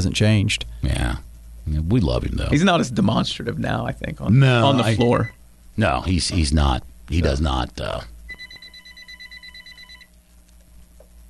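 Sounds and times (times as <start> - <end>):
speech: 0.0 - 8.1
faint low hum: 0.0 - 11.2
telephone ringing with a trilling electronic pulse: 8.3 - 10.1.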